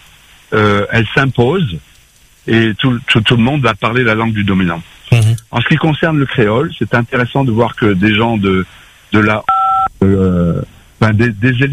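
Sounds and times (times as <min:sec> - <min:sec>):
speech: 0:00.5 - 0:11.7
electronic two-tone telephone beep on the line: 0:09.5 - 0:09.9.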